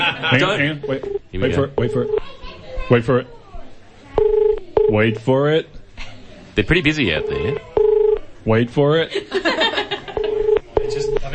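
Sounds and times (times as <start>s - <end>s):
laughter: 0.0s - 0.8s, 9.1s - 10.5s
faint murmur: 0.0s - 11.3s
speech: 0.1s - 3.4s, 4.9s - 5.8s, 6.6s - 7.7s, 8.4s - 9.6s
telephone keypad dialing tones: 0.9s - 1.2s, 1.8s - 2.2s, 4.2s - 5.2s, 7.2s - 8.3s, 10.2s - 11.3s.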